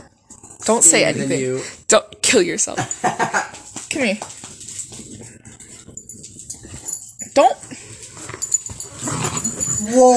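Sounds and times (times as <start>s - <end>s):
speech: 0.7s - 4.4s, 7.4s - 7.6s, 9.9s - 10.1s
dog growling while attacking its owner: 8.2s - 10.1s.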